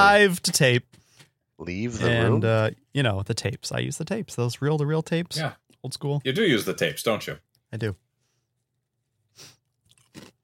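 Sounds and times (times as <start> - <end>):
speech: 0.0 - 1.0, 1.6 - 8.0
person chewing crunchy gingerbread cereal: 9.6 - 10.4.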